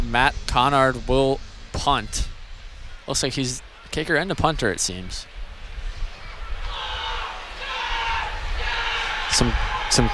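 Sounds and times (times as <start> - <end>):
speech: 0.1 - 2.3, 3.1 - 5.3, 9.4 - 10.1
large stadium crowd roaring and yelling: 2.9 - 10.1.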